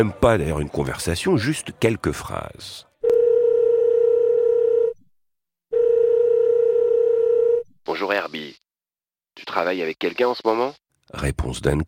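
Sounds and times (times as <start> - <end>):
speech: 0.0 - 2.9, 7.9 - 8.6, 9.4 - 11.8
telephone dial tone: 3.0 - 5.0, 5.7 - 7.6.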